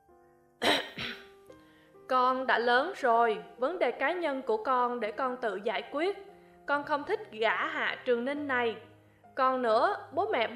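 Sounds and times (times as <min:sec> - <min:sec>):
throat clearing: 0:00.6 - 0:01.3
speech: 0:02.1 - 0:10.5.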